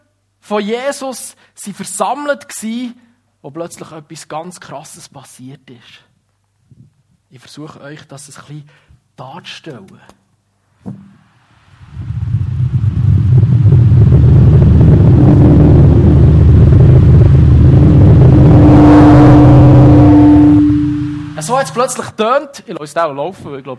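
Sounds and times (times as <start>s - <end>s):
speech: 0.5s - 6.1s, 6.7s - 10.2s, 21.4s - 23.7s
knock: 10.8s - 11.2s
deep rushing roar: 11.7s - 21.7s
rising whistling tone: 17.7s - 21.4s.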